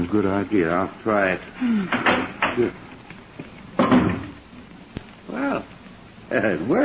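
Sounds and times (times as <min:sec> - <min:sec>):
speech: 0:00.0 - 0:02.9, 0:06.3 - 0:06.8
wooden clothes closet door pushed shut: 0:01.9 - 0:02.6.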